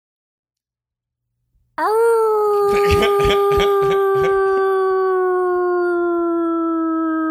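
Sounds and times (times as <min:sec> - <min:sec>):
speech: 0:01.8 - 0:02.0
person imitating a wolf howl with bark-like yelps: 0:01.8 - 0:07.2
laughter: 0:02.5 - 0:04.7.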